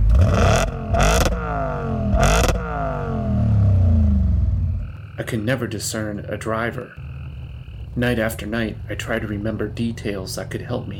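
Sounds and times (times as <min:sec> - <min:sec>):
American muscle car V8 engine revving and idling: 0:00.0 - 0:05.0
speech: 0:05.3 - 0:07.1, 0:08.0 - 0:10.9.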